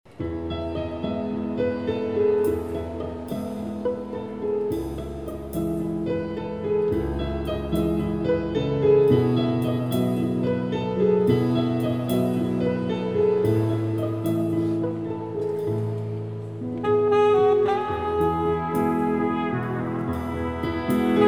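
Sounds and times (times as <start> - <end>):
piano: 0.1 - 21.2
strings: 0.1 - 21.2
solo saxophone: 16.7 - 21.2.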